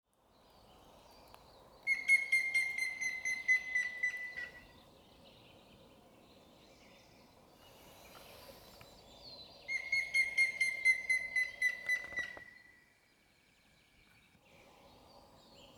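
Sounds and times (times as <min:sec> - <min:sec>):
Grey-headed woodpecker whistled calls: 0:01.8 - 0:04.8, 0:09.6 - 0:12.8.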